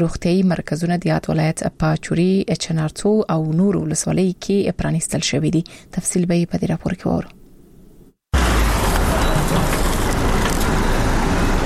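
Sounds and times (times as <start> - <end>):
speech: 0.0 - 7.4
vehicles loaded with medical supplies, engine and road roar: 8.3 - 11.6.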